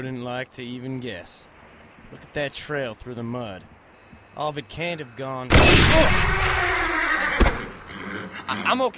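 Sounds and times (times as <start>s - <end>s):
speech: 0.0s - 1.5s, 2.1s - 3.8s, 4.4s - 6.9s, 8.2s - 8.9s
startled horse whinnying shrilly: 5.9s - 8.8s.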